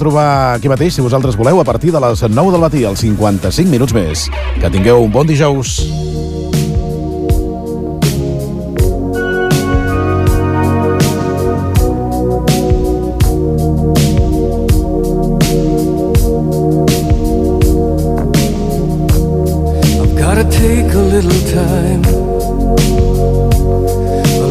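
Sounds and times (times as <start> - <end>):
speech: 0.0 - 6.4
1980s rock power ballad: 5.8 - 24.5.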